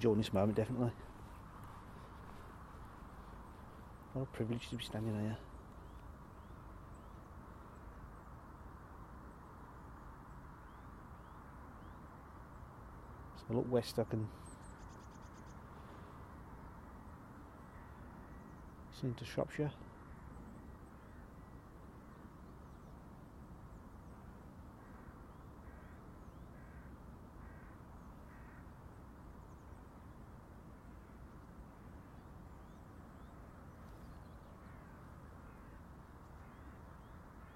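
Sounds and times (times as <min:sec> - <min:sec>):
speech: 0:00.0 - 0:01.2, 0:04.2 - 0:05.5, 0:13.5 - 0:14.5, 0:19.0 - 0:19.9
steady rumbling outdoor background: 0:00.0 - 0:37.5
crows cawing in the trees of a wooded area: 0:00.8 - 0:03.8, 0:14.8 - 0:18.7, 0:19.7 - 0:22.3, 0:24.2 - 0:29.0, 0:34.5 - 0:37.5.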